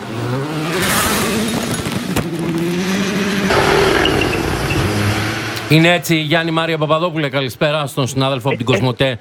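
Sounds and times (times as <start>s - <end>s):
racing car engine held flat out in sixth gear through a corner: 0.0s - 6.0s
speech: 5.7s - 9.1s.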